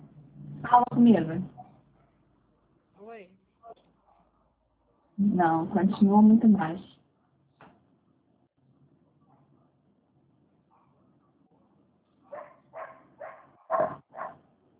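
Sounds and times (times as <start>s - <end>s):
hum: 0.0s - 14.7s
speech: 0.6s - 1.6s, 5.2s - 7.0s
dog barking: 1.5s - 2.2s, 4.0s - 5.2s, 9.2s - 9.8s, 10.7s - 14.5s.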